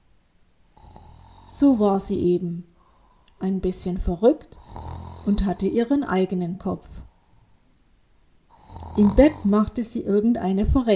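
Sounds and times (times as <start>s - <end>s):
woman snoring asleep in bed: 0.7s - 2.3s, 4.5s - 5.9s, 8.5s - 9.8s
speech: 1.6s - 2.7s, 3.4s - 6.9s, 9.0s - 10.9s.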